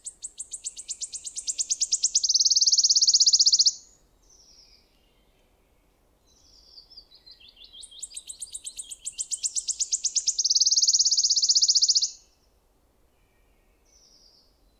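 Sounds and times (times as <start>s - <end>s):
wood warbler singing a sizzling high trill: 0.0s - 3.9s, 6.3s - 12.2s.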